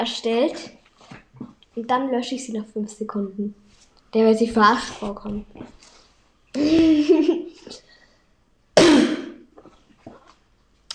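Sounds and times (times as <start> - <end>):
speech: 0.0 - 0.8, 1.8 - 5.9, 6.6 - 7.8
person coughing harshly: 8.8 - 9.5.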